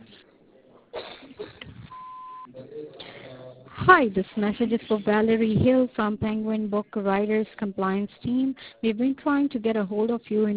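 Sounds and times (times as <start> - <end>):
answering machine voicemail beep: 1.9 - 2.5
speech: 3.9 - 10.5.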